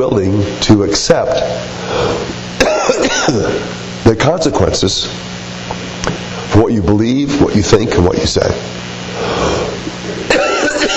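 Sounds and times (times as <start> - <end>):
speech: 0.1 - 5.4, 6.6 - 9.4
raspy cough: 2.6 - 3.7, 10.2 - 10.9
sharp throat clearing: 2.6 - 3.7.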